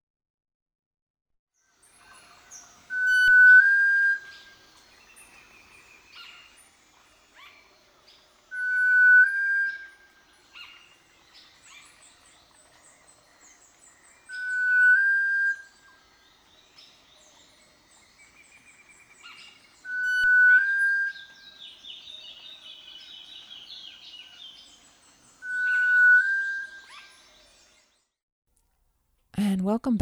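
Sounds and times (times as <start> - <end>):
birds chirping: 1.6 - 28.1
insects buzzing: 1.7 - 27.8
sunbittern whistling: 2.0 - 6.6, 8.5 - 27.6
speech: 29.4 - 30.0.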